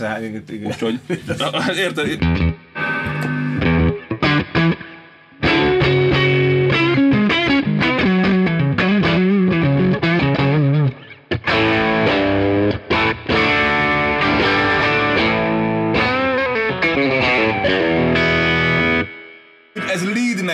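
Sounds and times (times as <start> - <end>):
speech: 0.0 - 2.5
laughter: 0.6 - 2.2
electric guitar through overdrive pedal strumming crunchy chords and riffs: 2.2 - 20.0.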